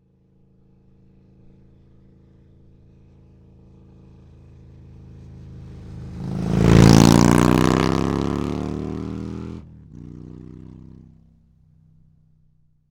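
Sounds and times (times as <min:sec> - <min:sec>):
motorcycle: 0:00.0 - 0:12.9.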